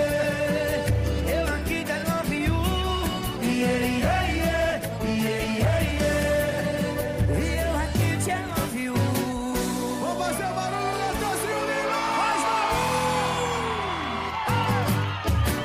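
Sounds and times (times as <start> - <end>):
dense driving music: 0.0 - 15.6
people shouting and whooping excitedly: 10.8 - 15.6.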